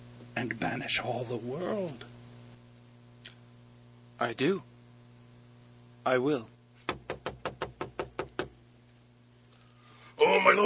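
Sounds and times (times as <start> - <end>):
speech: 0.4 - 2.1, 4.2 - 4.7, 6.0 - 6.5
firm knocking on a wooden door: 6.9 - 8.6.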